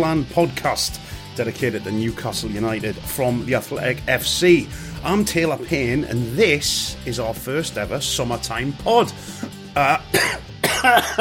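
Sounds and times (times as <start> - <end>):
speech: 0.0 - 11.1
person coughing after choking on their own breath: 9.4 - 11.1.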